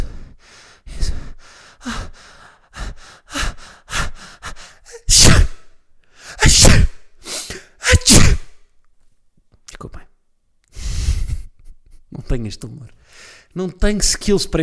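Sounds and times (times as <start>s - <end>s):
voice imitating a sneeze: 4.9s - 5.7s, 6.4s - 8.6s
speech: 12.4s - 14.6s.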